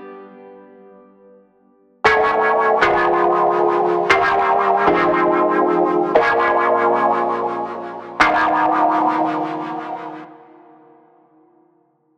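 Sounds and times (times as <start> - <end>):
funk chords: 2.1 - 10.3.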